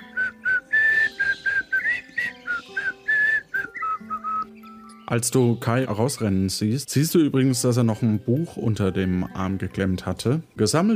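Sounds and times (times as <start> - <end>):
person whistling a quick bouncy tune: 0.1 - 4.5
speech: 5.1 - 10.9.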